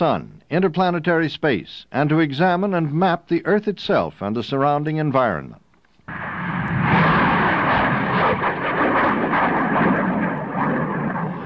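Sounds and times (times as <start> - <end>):
speech: 0.0 - 6.2
sounding rocket launch roar: 6.1 - 11.4.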